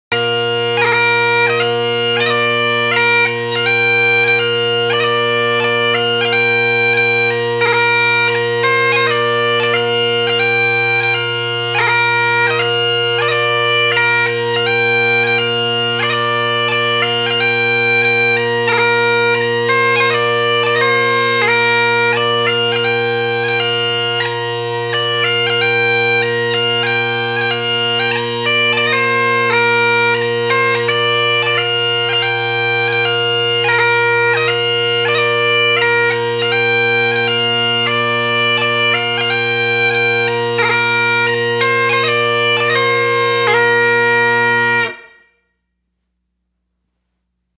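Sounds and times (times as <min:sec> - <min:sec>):
Highland bagpipes playing: 0:00.1 - 0:45.4.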